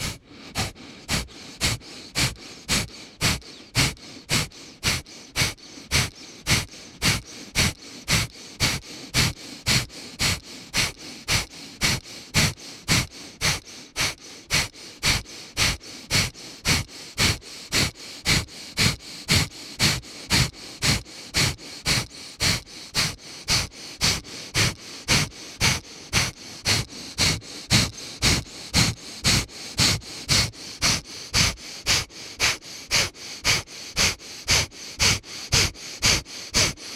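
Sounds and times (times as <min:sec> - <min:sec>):
forceful kapalabhati yoga breathing exhalations through the nose: 0:00.0 - 0:36.9.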